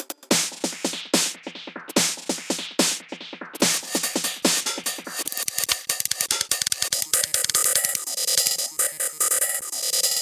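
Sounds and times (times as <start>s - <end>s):
sliced loops: 0.3s - 10.2s.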